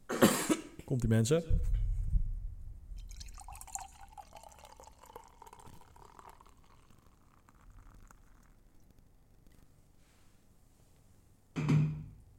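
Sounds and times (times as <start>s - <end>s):
speech: 0.9s - 1.8s
thump: 1.5s - 2.9s, 11.6s - 12.1s
port poured into a glass: 3.0s - 9.2s.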